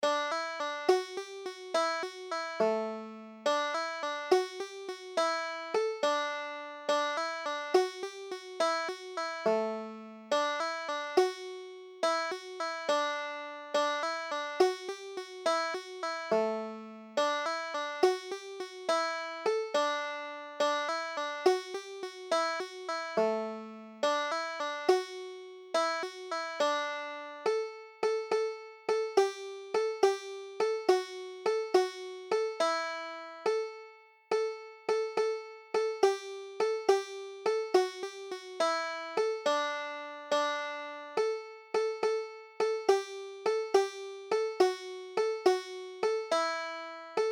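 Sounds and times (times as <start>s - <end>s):
banjo playing a jig: 0.0s - 47.2s.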